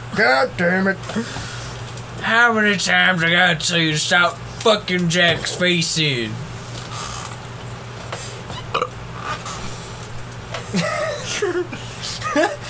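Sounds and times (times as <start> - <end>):
speech: 0.2 - 1.5, 2.2 - 6.5
throaty vocal noises: 4.8 - 7.4, 8.5 - 9.7
person burping: 8.6 - 9.0
laughter: 10.7 - 12.6.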